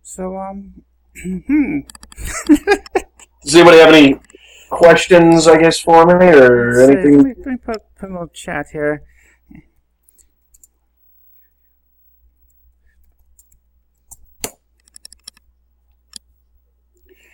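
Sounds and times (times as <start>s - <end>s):
speech: 0.2s - 9.7s
laughter: 2.2s - 3.6s
tapping on a computer keyboard: 13.0s - 15.4s.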